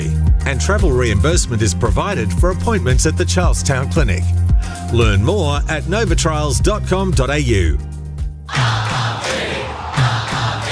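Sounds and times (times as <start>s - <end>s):
speech: 0.5s - 7.9s
large stadium crowd cheering: 8.5s - 10.7s.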